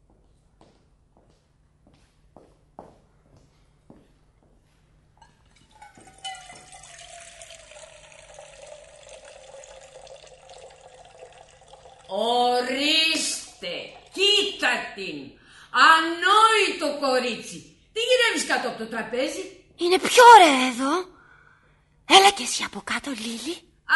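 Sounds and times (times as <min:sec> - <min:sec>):
footsteps: 0:00.1 - 0:06.9
tap water filling a pot for boiling: 0:05.2 - 0:14.6
speech: 0:12.1 - 0:12.9, 0:15.0 - 0:21.1, 0:22.3 - 0:23.9.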